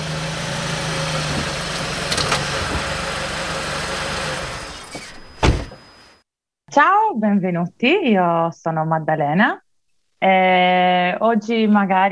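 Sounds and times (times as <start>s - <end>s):
rental Volvo car engine idling on a cold winter day in Sweden: 0.0s - 4.8s
speech: 6.8s - 9.6s, 10.2s - 12.1s.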